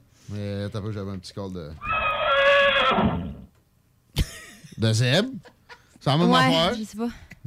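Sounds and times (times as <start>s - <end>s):
speech: 0.3s - 2.0s, 2.9s - 3.5s, 4.8s - 7.4s
horse whinnying with a strained quavering tone: 1.8s - 3.5s.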